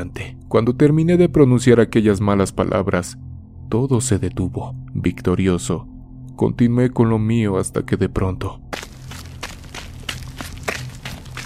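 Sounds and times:
speech: 0.0s - 8.8s
footsteps of person running over stones: 8.7s - 11.4s.

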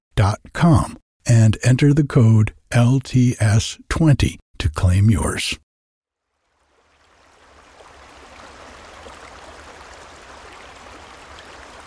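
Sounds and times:
speech: 0.2s - 5.6s
creek water flowing: 6.1s - 11.8s.

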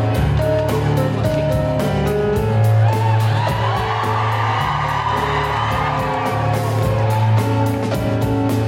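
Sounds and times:
large audience clapping: 0.1s - 2.0s, 2.8s - 8.6s
whoops and shouts of cheering: 2.5s - 8.1s.

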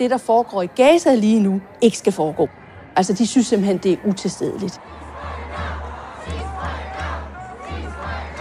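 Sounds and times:
speech: 0.0s - 5.4s
dense background of many voices: 0.0s - 8.4s
large protest crowd chanting slogans in unison: 2.5s - 8.4s.

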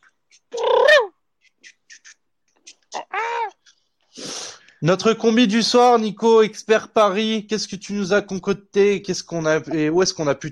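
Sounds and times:
warbling gobble-like mouth squeal: 0.0s - 3.6s
breathy hiss: 4.1s - 4.8s
speech: 4.8s - 10.5s.

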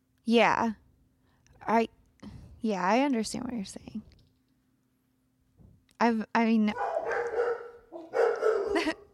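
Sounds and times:
speech: 0.3s - 0.8s, 1.6s - 2.0s, 2.6s - 4.1s, 6.0s - 6.9s, 8.7s - 9.0s
dogs barking and yapping: 6.7s - 9.1s.

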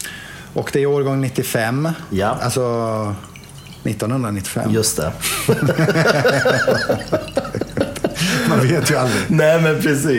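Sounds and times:
faint noise: 0.0s - 10.1s
speech: 0.6s - 7.6s, 8.5s - 10.1s
wine pouring into a glass: 2.7s - 5.2s, 5.8s - 8.6s
laughter: 5.2s - 9.1s.

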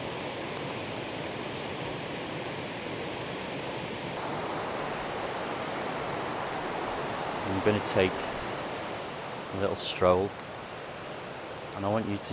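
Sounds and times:
flowing water: 0.0s - 12.3s
speech: 7.5s - 8.3s, 9.5s - 10.4s, 11.8s - 12.3s.

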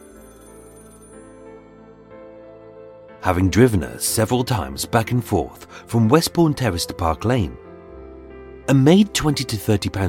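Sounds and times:
telephone bell ringing in a flat: 0.0s - 1.5s
speech: 3.2s - 7.6s, 8.7s - 10.0s.

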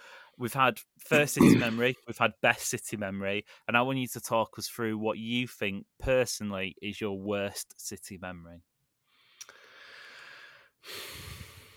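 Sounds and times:
speech: 0.4s - 8.7s, 10.8s - 11.2s
deep breath: 9.1s - 11.7s.

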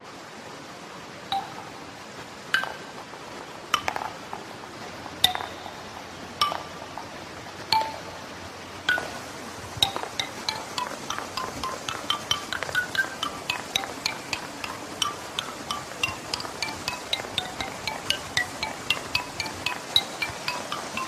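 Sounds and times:
stream water flowing: 0.0s - 21.0s
wooden ball clacking and pinging on small stands down a sloping hill: 2.6s - 3.0s, 3.7s - 4.5s, 5.2s - 8.2s, 8.8s - 21.0s.

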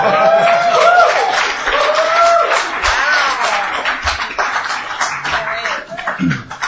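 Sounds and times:
crowd cheering and whooping: 0.0s - 3.6s
crowd of government lawyers applauding: 0.0s - 6.6s.

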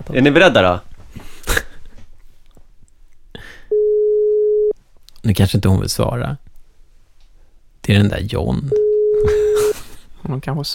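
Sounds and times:
speech: 0.0s - 0.9s, 5.2s - 6.4s, 7.9s - 9.4s, 10.2s - 10.7s
telephone ringback tone while calling: 3.7s - 4.7s, 8.7s - 9.7s.

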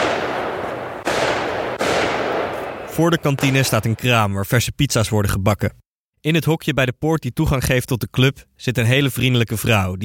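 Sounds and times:
fireworks crackling in a rapid barrage heard from a club car park in Lanaken: 0.0s - 4.1s
speech: 3.0s - 10.0s.

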